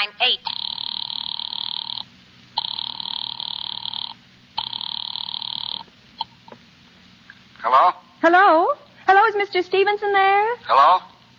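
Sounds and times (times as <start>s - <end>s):
telephone line ringing as a call is placed to an office number: 0.5s - 5.9s
speech: 7.6s - 11.1s.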